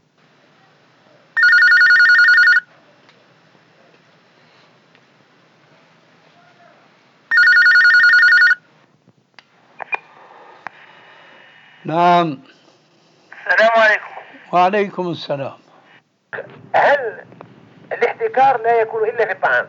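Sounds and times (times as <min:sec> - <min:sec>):
telephone ringing with an electronic trill: 0:01.4 - 0:02.7, 0:07.3 - 0:08.7
speech: 0:11.9 - 0:12.6, 0:14.5 - 0:15.6, 0:18.4 - 0:19.6.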